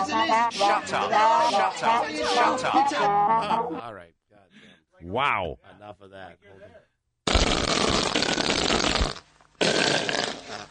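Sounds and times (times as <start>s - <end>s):
speech: 0.0s - 4.2s, 5.0s - 6.8s
whoopee cushion fart noise: 7.3s - 10.7s.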